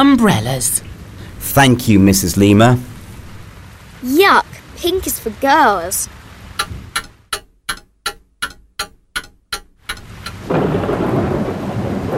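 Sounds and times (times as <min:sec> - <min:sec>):
speech: 0:00.0 - 0:02.9, 0:04.0 - 0:06.2
heavy rain hissing: 0:00.0 - 0:07.0, 0:09.9 - 0:12.1
sharp taps: 0:06.6 - 0:10.5.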